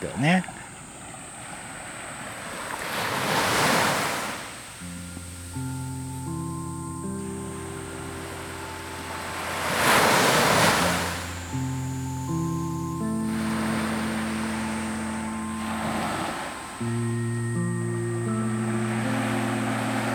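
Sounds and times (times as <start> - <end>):
speech: 0.0 - 0.6
sea surf washing: 0.0 - 20.1
soft sustained melodic tones: 4.7 - 20.1.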